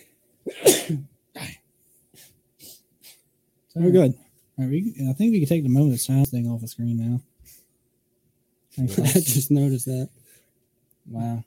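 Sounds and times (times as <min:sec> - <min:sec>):
loud sneeze: 0:00.5 - 0:01.6
speech: 0:00.9 - 0:01.5, 0:03.8 - 0:07.3, 0:08.8 - 0:10.2, 0:11.1 - 0:11.4
short quieter breathy sniffs: 0:02.1 - 0:03.2.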